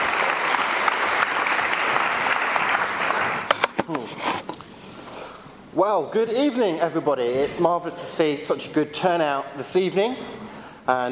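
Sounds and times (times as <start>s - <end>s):
audience applause at a university debate: 0.0s - 3.9s
speech: 5.8s - 11.1s.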